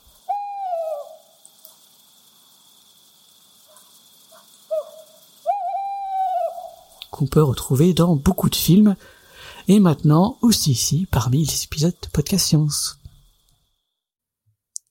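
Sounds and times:
faint steady hiss: 0.0 - 14.0
tawny owl hooting: 0.1 - 1.7, 3.6 - 7.0
speech: 7.2 - 13.0.

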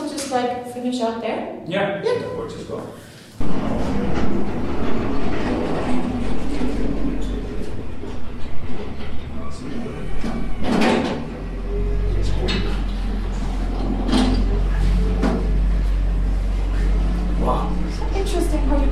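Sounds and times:
speech: 0.3 - 4.5
snow plough grinding and scraping the road: 3.4 - 16.0
snow plough engine rumbling while clearing the road: 3.4 - 18.9.

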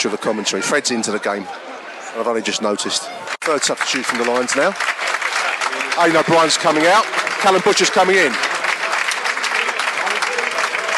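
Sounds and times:
speech: 0.0 - 5.2, 6.0 - 8.5
large stadium crowd applauding substituted player: 3.2 - 10.9.

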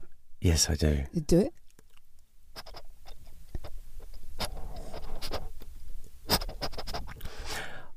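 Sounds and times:
speech: 0.4 - 1.6
person imitating a truffle dog sniffing in someone's ear: 2.6 - 5.6, 6.3 - 7.6.

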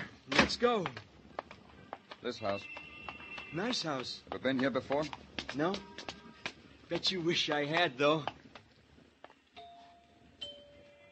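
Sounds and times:
speech: 0.5 - 1.0, 2.2 - 2.8, 3.5 - 6.2, 6.9 - 8.3
house doorbell chime: 9.6 - 11.0.

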